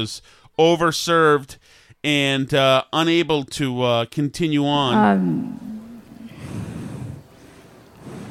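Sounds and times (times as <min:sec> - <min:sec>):
speech: 0:00.0 - 0:05.7
heavy ragged breathing: 0:04.9 - 0:08.2
loud snorting inhales: 0:04.9 - 0:08.2.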